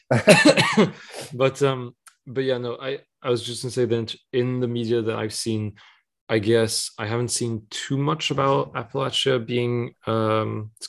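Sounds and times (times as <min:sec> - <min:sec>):
hoarse coughs from a person with a sore throat: 0:00.0 - 0:01.3
speech: 0:00.1 - 0:10.8.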